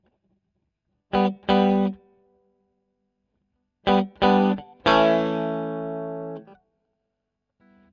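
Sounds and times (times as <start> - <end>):
electric guitar recorded with a Royer microphone: 1.2 - 2.0, 3.9 - 6.6.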